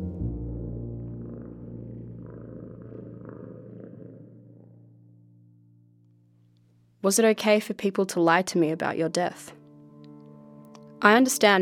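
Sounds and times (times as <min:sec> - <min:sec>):
cat purring: 0:00.6 - 0:05.2
speech: 0:07.0 - 0:09.6, 0:11.0 - 0:11.5.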